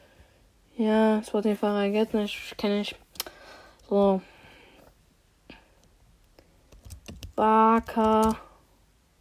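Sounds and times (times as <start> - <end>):
speech: 0.8 - 3.0, 3.9 - 4.3, 7.4 - 8.5
computer keyboard keys clicking during typing of a web search: 6.7 - 8.4.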